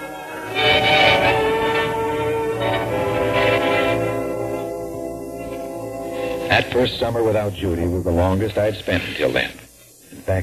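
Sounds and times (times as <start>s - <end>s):
sustained whistle-like tone of a departing train: 0.0s - 6.6s
train pulling away: 0.0s - 9.5s
speech: 6.8s - 9.6s, 10.3s - 10.4s.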